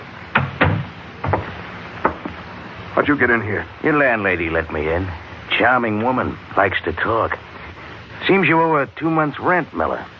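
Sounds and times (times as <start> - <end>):
apartment door closing with clunks and thumps: 0.3 - 2.4
speech: 3.0 - 7.5, 8.2 - 10.1.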